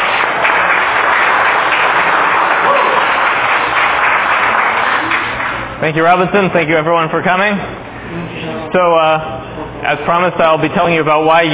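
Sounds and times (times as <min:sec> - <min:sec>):
audience applauding: 0:00.0 - 0:05.8
speech: 0:05.8 - 0:11.5.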